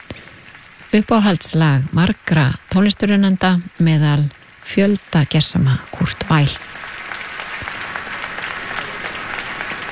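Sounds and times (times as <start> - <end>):
speech: 0.9 - 6.7
audience applause at the closing concert of an arts festival: 6.3 - 9.9.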